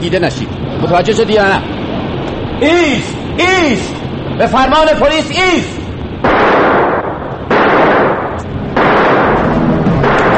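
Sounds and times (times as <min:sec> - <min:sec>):
speech: 0:00.0 - 0:01.8, 0:02.6 - 0:05.8
heavy cannon blasts: 0:06.1 - 0:10.3.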